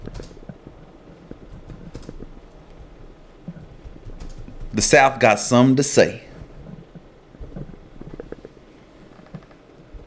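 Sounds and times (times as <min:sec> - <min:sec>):
typing on a computer keyboard: 0:00.0 - 0:00.4, 0:01.5 - 0:02.3, 0:03.8 - 0:04.8
speech: 0:04.8 - 0:06.3.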